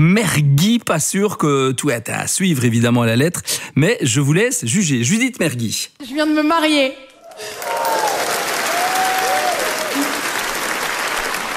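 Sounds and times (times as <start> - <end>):
speech: 0.0 - 8.0
audience applauding enthusiastically: 7.2 - 11.5.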